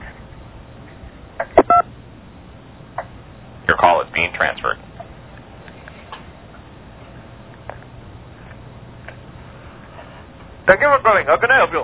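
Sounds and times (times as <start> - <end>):
thin phone-line hiss: 1.5 - 1.9
touch-tone telephone keypad beep in an automated phone menu: 1.6 - 1.9
speech: 3.8 - 4.9, 10.7 - 11.8.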